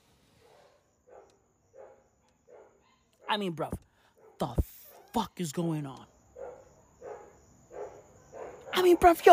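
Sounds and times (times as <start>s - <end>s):
dogs barking at night: 0.4s - 3.5s, 4.1s - 5.2s, 6.4s - 9.3s
speech: 3.3s - 3.8s, 4.4s - 6.1s, 8.8s - 9.3s.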